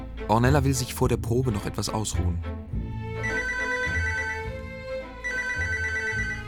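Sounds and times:
speech: 0:00.3 - 0:02.8
telephone ringing with a bright repeating electronic tone: 0:03.2 - 0:04.7, 0:05.2 - 0:06.4.

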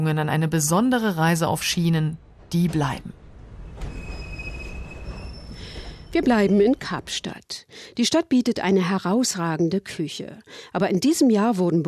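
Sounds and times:
speech: 0:00.0 - 0:03.2, 0:06.1 - 0:11.8
train pulling into a station rumbling: 0:01.2 - 0:07.4
train wheel squeals: 0:03.5 - 0:06.9.

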